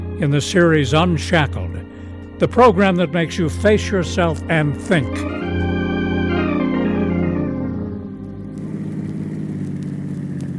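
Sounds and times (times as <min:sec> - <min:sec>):
speech: 0:00.2 - 0:05.4
bus engine rumbling as it stops and stalls on railroad tracks: 0:05.2 - 0:10.5.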